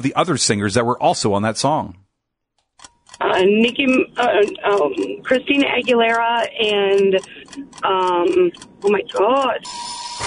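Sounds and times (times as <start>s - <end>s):
speech: 0.0s - 2.1s, 3.2s - 10.2s
animated voices talking: 3.2s - 9.6s
game show timer buzzer: 9.2s - 10.2s.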